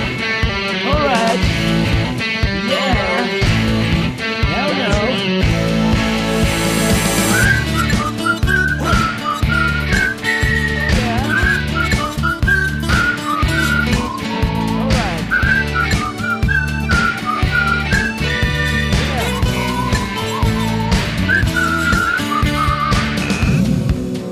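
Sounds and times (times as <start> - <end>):
steady rhythmic musical backing: 0.0 - 24.3
person whistling a lively tune: 6.7 - 23.6.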